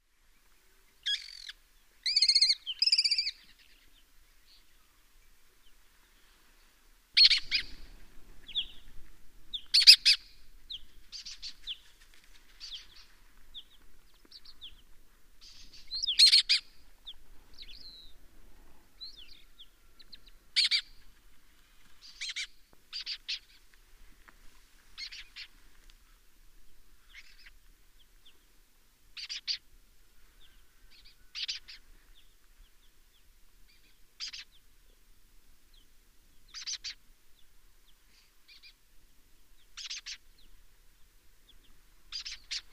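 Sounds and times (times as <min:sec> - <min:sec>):
lesser kestrel calling: 0:01.0 - 0:04.7, 0:07.2 - 0:18.2, 0:19.0 - 0:21.4, 0:22.0 - 0:23.6, 0:25.0 - 0:26.2, 0:27.0 - 0:28.4, 0:29.2 - 0:29.7, 0:30.3 - 0:32.8, 0:33.7 - 0:35.0, 0:36.4 - 0:38.8, 0:39.6 - 0:40.6, 0:41.5 - 0:42.7.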